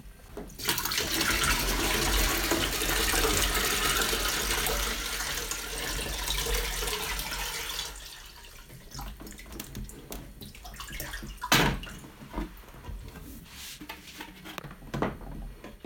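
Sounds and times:
water pouring into a plastic filter pitcher reservoir: 0.6 - 12.1.

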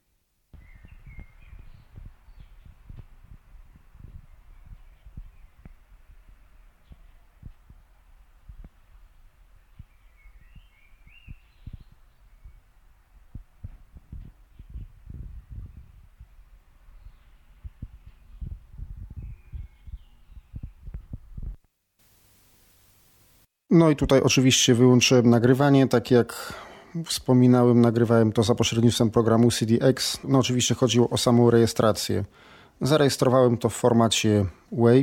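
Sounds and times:
faint bird-like chirps: 0.6 - 7.5, 9.5 - 12.8, 16.8 - 21.2
low thumps: 0.6 - 21.6
cassette tape hiss without Dolby: 21.5 - 23.5
speech: 23.7 - 35.0.

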